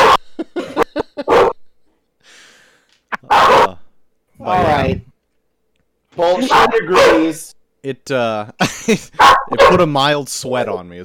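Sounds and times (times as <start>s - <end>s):
dog barking: 0.0s - 0.2s, 1.2s - 1.6s, 3.2s - 3.8s, 6.4s - 7.3s, 9.2s - 9.9s
laughter: 0.2s - 1.5s, 8.6s - 9.2s
speech: 6.2s - 11.0s.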